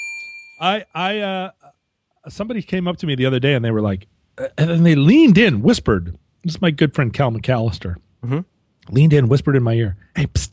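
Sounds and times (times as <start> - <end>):
single bell ringing with thin metallic tone: 0.0 - 0.6
speech: 0.6 - 10.5.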